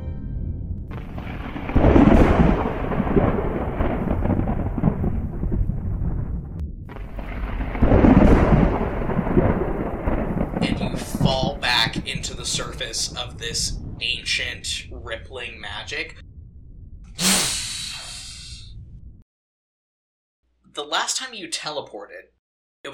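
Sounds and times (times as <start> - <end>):
low storm roar: 0.4 - 19.2
thunder cracks: 0.8 - 17.2
heavy rain: 0.9 - 6.2, 6.9 - 16.1
speech: 12.8 - 16.2, 21.2 - 22.9.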